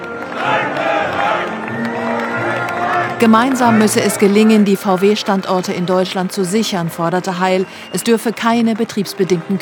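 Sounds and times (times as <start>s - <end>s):
large crowd applauding at a works meeting: 0.0s - 9.6s
large crowd chanting slogans at a works meeting: 0.2s - 4.2s
speech: 3.2s - 9.6s.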